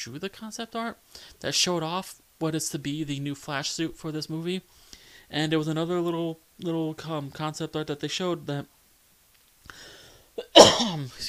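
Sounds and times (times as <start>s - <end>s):
speech: 0.0s - 8.8s, 9.7s - 11.2s
throat-clearing cough with a short voiced rasp: 10.4s - 11.0s.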